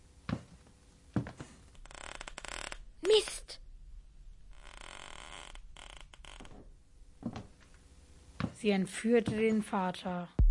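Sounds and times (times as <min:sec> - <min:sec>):
wooden stairs creaking underfoot: 0:01.2 - 0:02.8, 0:04.5 - 0:07.7, 0:09.2 - 0:09.7
speech: 0:08.6 - 0:10.4.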